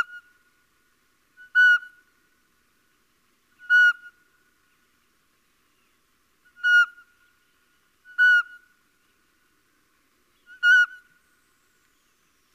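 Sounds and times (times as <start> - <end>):
little owl calling with plaintive downslurred whistled notes: 0.0 - 0.4, 1.4 - 2.1, 3.6 - 4.2, 6.4 - 7.2, 8.0 - 8.7, 10.4 - 12.5.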